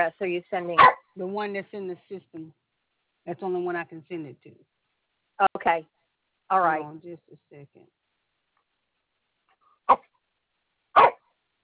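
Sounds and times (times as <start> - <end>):
speech: 0.0 - 2.6, 3.2 - 4.8, 5.4 - 8.0, 9.9 - 10.1
small dog barking: 0.8 - 1.1, 9.9 - 10.1, 11.0 - 11.2.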